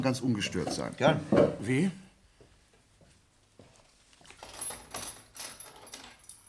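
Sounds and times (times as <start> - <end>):
speech: 0.0 - 2.0
keys jangling and clinking: 4.4 - 6.4.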